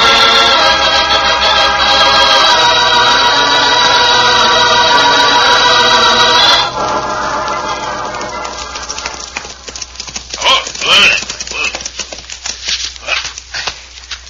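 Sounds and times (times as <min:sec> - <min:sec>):
low hum: 0:00.0 - 0:11.9
horse hooves clip-clopping: 0:06.7 - 0:14.2.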